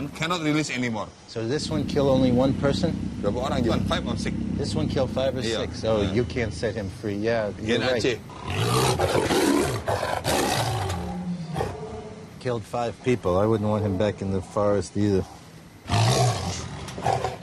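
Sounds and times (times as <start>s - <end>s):
speech: 0.0s - 9.4s, 12.4s - 15.4s
caged Sumatran man-eating tiger roaring: 1.6s - 5.5s, 8.2s - 12.4s, 15.2s - 17.4s.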